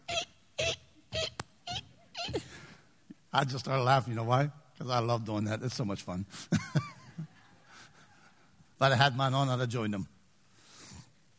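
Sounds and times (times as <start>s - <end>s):
voice imitating a little kid's sneakers squeaking: 0.0s - 2.5s
speech: 3.4s - 6.9s, 8.8s - 10.2s.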